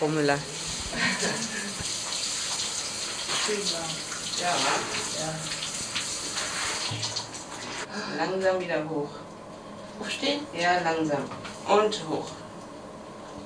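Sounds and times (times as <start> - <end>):
speech: 0.0 - 1.9, 3.4 - 5.6, 6.9 - 7.2, 7.9 - 9.3, 10.0 - 12.4
shower water running into a bathtub: 0.0 - 7.9.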